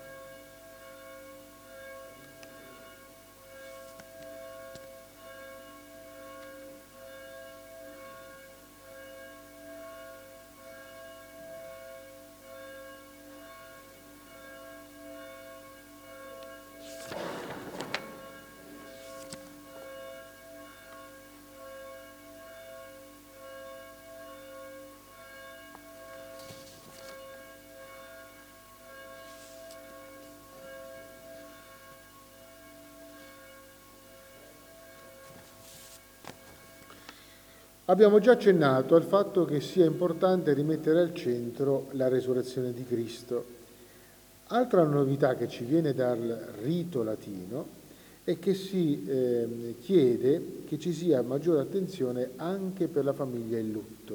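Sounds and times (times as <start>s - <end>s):
church bell ringing with long humming overtones: 0.0s - 54.1s
clattering burst: 17.0s - 18.9s
speech: 37.9s - 43.6s, 44.5s - 54.1s.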